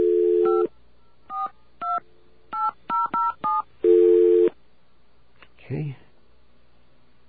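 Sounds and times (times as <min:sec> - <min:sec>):
steady phone tone: 0:00.0 - 0:00.7, 0:02.6 - 0:04.6
touch-tone phone keypad dialing tones: 0:02.6 - 0:03.6.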